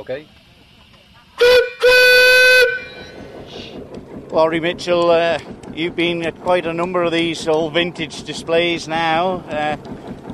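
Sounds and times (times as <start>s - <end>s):
speech: 0.0s - 0.4s, 3.0s - 10.0s
low mechanical rumble: 0.0s - 10.3s
steam whistle blasts from a vintage engine: 1.4s - 3.2s.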